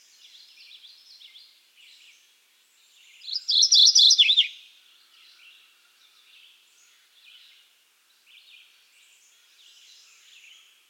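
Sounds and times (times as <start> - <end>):
Mourning Warbler Geothlypis philadelphia singing: 3.3 - 4.5.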